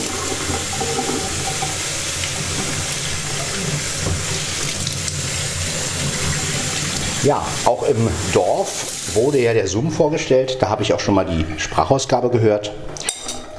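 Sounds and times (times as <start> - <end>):
cup being washed under the tap at a kitchen sink: 0.0 - 9.8
tap water running at a kitchen sink: 0.0 - 13.5
speech: 7.2 - 13.0.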